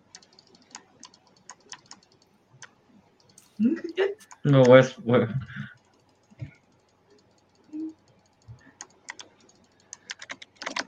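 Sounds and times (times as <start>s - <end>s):
rapid keyboard clicking: 0.0s - 3.6s, 5.7s - 10.8s
speech: 3.6s - 5.7s.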